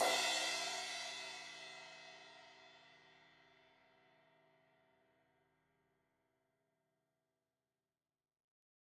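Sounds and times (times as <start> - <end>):
16-inch crash cymbal hit on the edge: 0.0 - 1.7.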